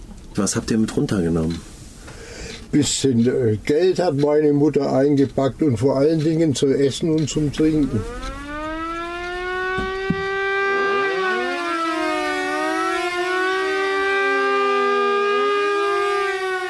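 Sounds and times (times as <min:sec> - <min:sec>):
speech: 0:00.4 - 0:01.7, 0:02.7 - 0:08.4
air raid siren wailing: 0:07.5 - 0:16.6.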